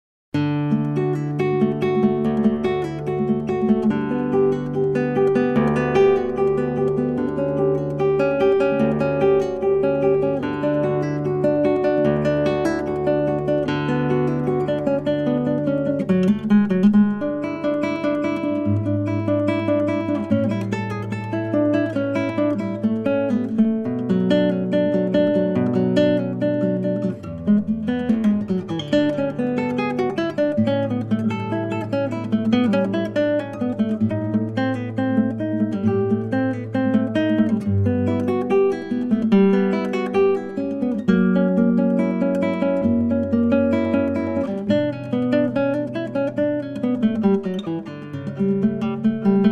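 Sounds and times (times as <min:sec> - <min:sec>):
classical prelude played on guitar: 0:00.4 - 0:49.4.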